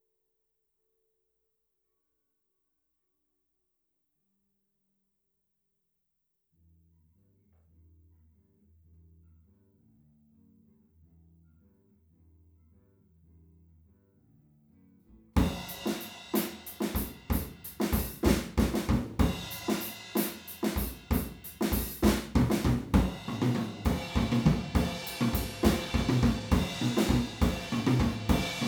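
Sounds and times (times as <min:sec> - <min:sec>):
drums recorded with PZM omni microphones in stereo: 0:15.4 - 0:28.6.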